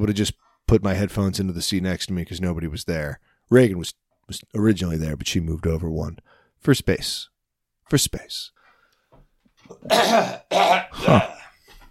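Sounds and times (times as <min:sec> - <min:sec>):
speech: 0:00.0 - 0:07.3, 0:07.9 - 0:08.6, 0:09.7 - 0:11.4
person clearing throat: 0:09.7 - 0:11.6.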